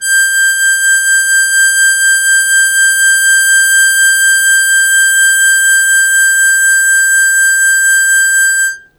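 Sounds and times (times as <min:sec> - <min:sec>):
harmonica long sustained G3 with fast wah wah: 0:00.0 - 0:08.8.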